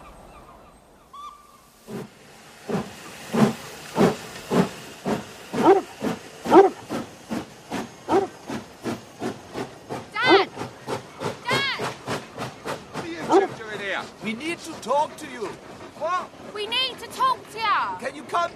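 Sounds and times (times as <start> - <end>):
steam locomotive chuffing past: 1.6 - 18.5.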